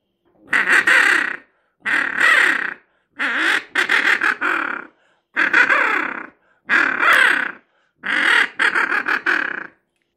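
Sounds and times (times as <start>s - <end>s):
wigeon duck: 0.5s - 9.8s.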